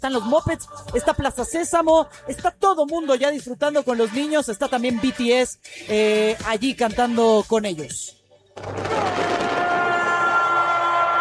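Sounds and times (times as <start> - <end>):
speech: 0.0 - 9.3
dense barrage of fireworks crackling and popping over a stadium: 8.6 - 10.3
stadium crowd roaring during a halftime ceremony: 8.6 - 11.1.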